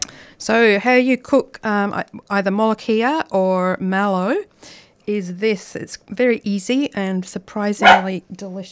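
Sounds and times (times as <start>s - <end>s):
speech: 0.4s - 8.6s
dog barking: 7.8s - 8.1s.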